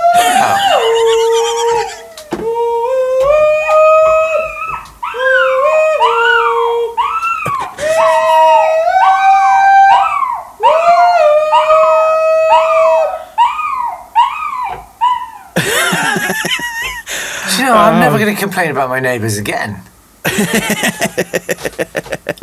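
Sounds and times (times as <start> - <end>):
laughter: 0.0 - 4.2, 6.7 - 8.6, 15.6 - 18.2, 20.2 - 22.4
three-legged dog howling and yodeling: 0.0 - 16.6
speech: 18.2 - 22.0.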